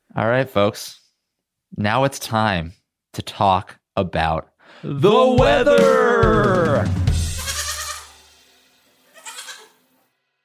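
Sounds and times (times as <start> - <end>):
speech: 0.2 - 1.0, 1.7 - 7.0
goat bleating: 7.3 - 8.1, 9.1 - 9.8.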